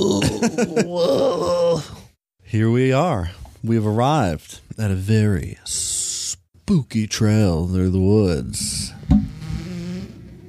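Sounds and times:
speech: 0.0 - 6.0, 6.7 - 9.3
bumblebee buzzing on a trail through the woods: 9.1 - 10.3.

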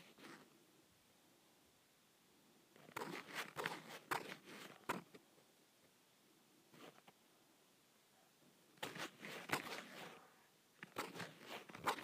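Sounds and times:
quiet steady hiss: 0.0 - 12.0
leather being scratched with dry scraping: 2.9 - 5.0, 8.8 - 10.2, 10.8 - 12.0.

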